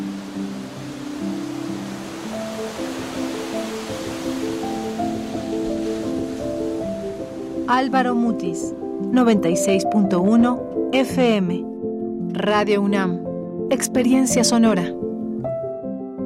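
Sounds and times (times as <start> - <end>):
ocean surf waves breaking on shore: 0.0 - 9.0
soft sustained musical notes: 0.0 - 16.2
speech: 7.7 - 11.7, 12.4 - 15.0.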